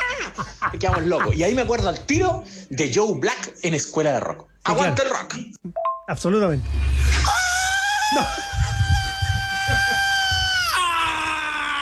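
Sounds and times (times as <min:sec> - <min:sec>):
laughter: 0:00.0 - 0:02.4, 0:07.7 - 0:11.3
speech: 0:00.2 - 0:07.4, 0:08.1 - 0:08.6
live thrash metal singer high-pitched scream: 0:07.0 - 0:11.7.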